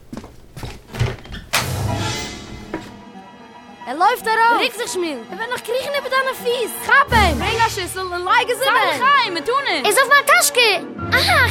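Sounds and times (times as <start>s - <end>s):
door scraping open: 1.0s - 3.0s
speech: 3.9s - 11.5s.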